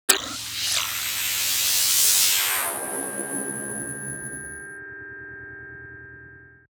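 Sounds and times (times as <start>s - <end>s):
sci-fi transition effect: 0.1s - 4.7s.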